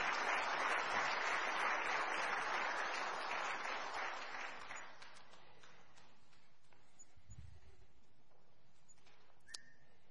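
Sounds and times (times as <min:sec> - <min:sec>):
crowd applauding for retiring Marines: 0:00.0 - 0:06.1.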